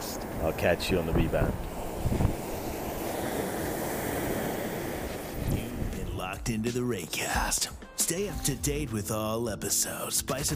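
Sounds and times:
wind buffeting close to the microphone: 0.0s - 6.5s
ocean waves washing onto a beach: 0.0s - 7.2s
speech: 0.5s - 2.3s, 6.4s - 10.5s.

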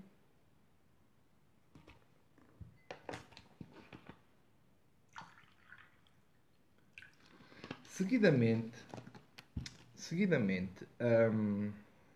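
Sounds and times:
water being poured into glasses: 5.1s - 7.4s
speech: 8.0s - 9.1s, 10.1s - 11.9s.

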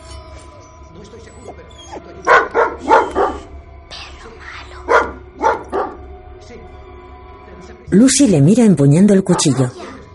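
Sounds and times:
speech: 1.0s - 2.9s, 7.9s - 9.9s
dog barking at a girl: 1.8s - 3.6s, 4.8s - 6.1s, 9.2s - 10.0s.

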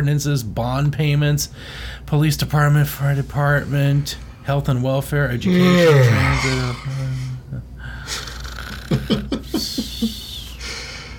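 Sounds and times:
speech: 0.0s - 7.2s
person making a fake snore: 5.4s - 7.4s.

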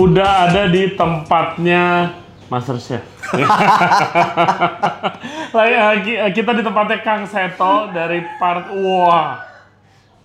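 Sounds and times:
speech: 0.0s - 9.5s
low hum: 0.0s - 10.2s
laughter: 3.2s - 5.6s, 7.6s - 8.6s
rooster crowing: 7.3s - 10.2s.

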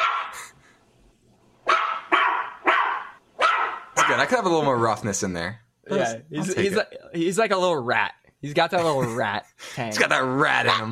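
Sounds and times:
small dog barking: 0.0s - 0.4s, 1.6s - 4.3s
speech: 4.1s - 10.9s.

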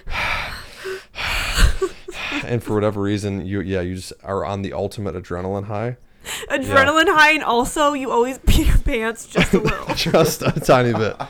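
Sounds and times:
voice imitating heavy nervous breathing while hiding: 0.0s - 2.8s
speech: 2.5s - 11.2s
laughter: 6.7s - 7.0s, 9.3s - 11.2s.

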